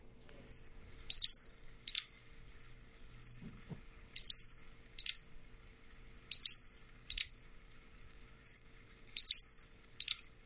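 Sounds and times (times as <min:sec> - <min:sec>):
Pacific-slope Flycatcher high thin peeps and sharp chips: 0:00.3 - 0:02.3, 0:03.2 - 0:05.4, 0:06.0 - 0:10.4.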